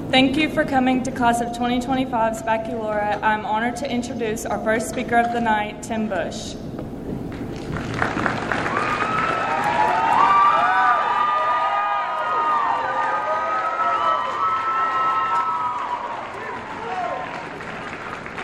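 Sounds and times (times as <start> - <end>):
speech: 0.1 - 6.6
crowd cheering in a large room: 7.7 - 18.4
whoops and shouts: 8.6 - 17.3.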